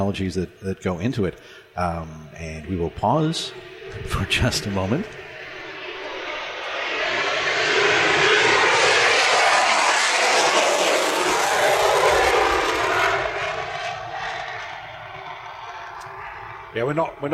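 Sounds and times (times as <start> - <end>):
speech: 0.0 - 5.2, 16.8 - 17.3
F-22 fighter jet roaring past: 0.0 - 17.3.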